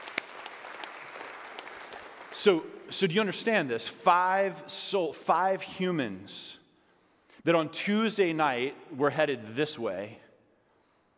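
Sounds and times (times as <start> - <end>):
church congregation applause during a sermon: 0.0 - 2.4
speech: 2.4 - 6.6, 7.4 - 10.2.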